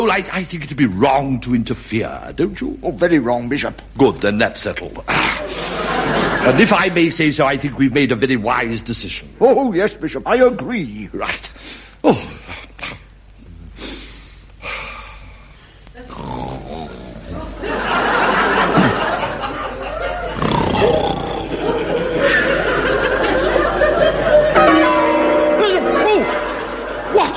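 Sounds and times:
speech: 0.0s - 12.4s
laughter: 5.1s - 7.0s, 17.2s - 27.3s
church bells ringing together: 23.9s - 27.3s.

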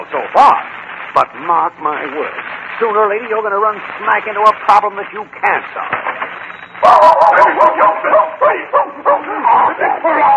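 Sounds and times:
speech: 0.0s - 10.3s
dog barking and yipping: 6.9s - 10.3s.

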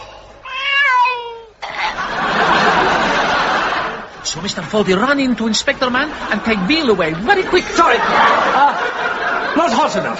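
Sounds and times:
sick cat meowing: 0.4s - 1.6s
laughter: 1.6s - 10.1s
speech: 4.4s - 10.1s.

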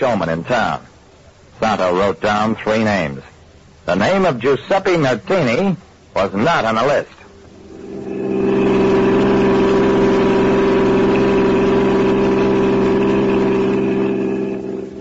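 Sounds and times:
speech: 0.0s - 0.9s, 1.6s - 3.3s, 3.9s - 7.2s
car engine running as the car is driven: 7.4s - 14.9s.

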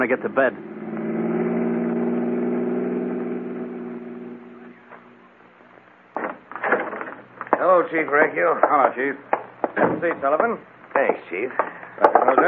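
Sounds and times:
speech: 0.0s - 0.7s, 7.8s - 12.4s
car engine droning as the car drives off: 0.0s - 7.5s.

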